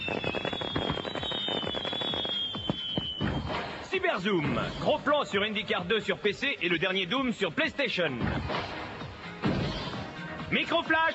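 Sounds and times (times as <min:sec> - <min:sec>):
thin high whistle sliding downward: 0:00.0 - 0:03.6
fireworks-style explosions crackling and popping: 0:00.0 - 0:04.9, 0:08.2 - 0:10.7
speech: 0:04.1 - 0:08.8, 0:10.5 - 0:11.1.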